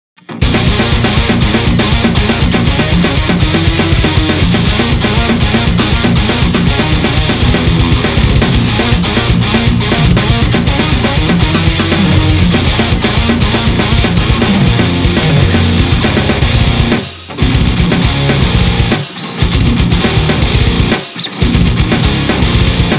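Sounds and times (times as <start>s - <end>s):
valve amplifier with 6L6 valves: 0.4s - 22.9s.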